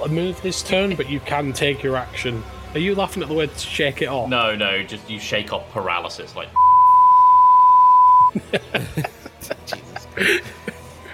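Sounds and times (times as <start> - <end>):
speech: 0.0 - 6.6, 8.3 - 9.1, 10.2 - 10.6
censor beep: 6.6 - 8.3
person chuckling: 8.3 - 11.1.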